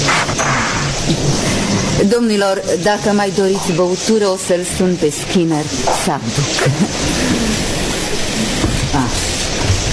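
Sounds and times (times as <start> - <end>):
heavy steady rain: 0.0 - 9.9
speech: 2.0 - 9.8.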